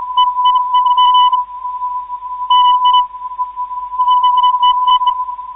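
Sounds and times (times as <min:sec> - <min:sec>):
non-directional radio beacon signal at 480 kHz: 0:00.2 - 0:01.4, 0:02.5 - 0:03.1, 0:04.0 - 0:05.2.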